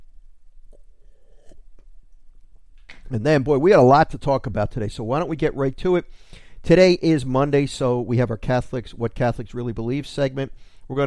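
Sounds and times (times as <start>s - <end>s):
sipping coffee from a cup: 0.5s - 2.6s
wet mouth clicks: 0.6s - 1.9s
person swallowing: 0.6s - 2.1s
speech: 3.1s - 11.0s.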